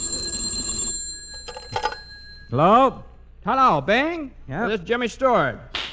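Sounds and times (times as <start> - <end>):
home telephone bell ringing: 0.0 - 2.6
faint jingle: 0.0 - 3.0
speech: 2.5 - 5.8.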